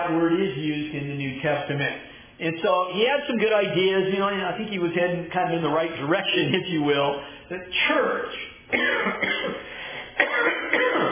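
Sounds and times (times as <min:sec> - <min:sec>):
speech: 0:00.1 - 0:09.6
man clearing throat: 0:08.7 - 0:11.1.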